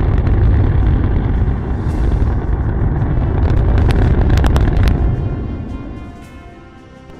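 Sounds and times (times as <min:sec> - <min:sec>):
rocket engines roaring during static fire test at half thrust: 0:00.0 - 0:07.1.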